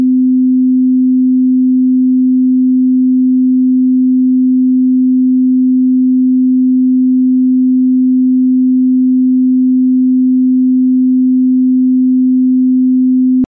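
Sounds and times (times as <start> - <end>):
256 Hz signal tone five octaves up: 0.1 - 13.5.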